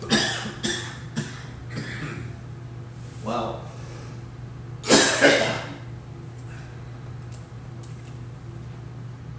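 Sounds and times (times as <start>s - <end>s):
coughing fit: 0.0s - 2.4s, 4.8s - 5.9s
steady low hum: 0.0s - 9.3s.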